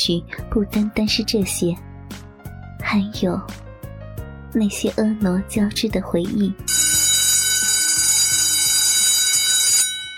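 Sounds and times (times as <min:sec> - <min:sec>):
speech: 0:00.0 - 0:01.9, 0:02.9 - 0:03.6, 0:04.5 - 0:06.8
electric school bell signalling the evening self-study break: 0:06.7 - 0:10.1.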